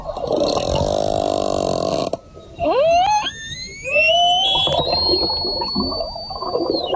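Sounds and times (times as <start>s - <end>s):
orca rasping pulsed call underwater: 0.1s - 6.9s
orca squealing whistles sweeping upward underwater: 2.3s - 6.9s.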